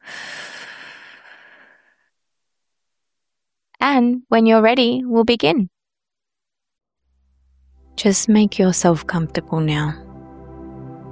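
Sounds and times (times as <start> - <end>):
long slow breath in and out: 0.0 - 2.1
speech: 3.8 - 5.8, 8.0 - 10.0.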